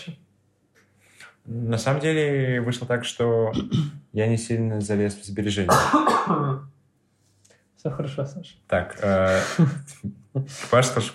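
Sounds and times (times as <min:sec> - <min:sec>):
speech: 0:01.5 - 0:06.7, 0:07.8 - 0:11.1
man coughing: 0:03.6 - 0:04.0, 0:05.7 - 0:06.6.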